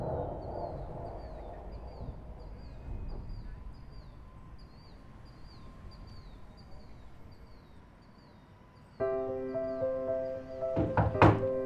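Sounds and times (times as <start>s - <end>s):
faint chirping: 0.0s - 11.6s
loud thumping knocks on a door: 10.8s - 11.6s.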